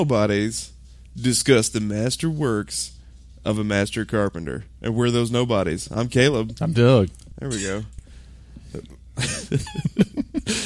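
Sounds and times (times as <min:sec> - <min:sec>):
speech: 0:00.0 - 0:08.0, 0:08.7 - 0:10.6
sharp cough: 0:07.5 - 0:07.8.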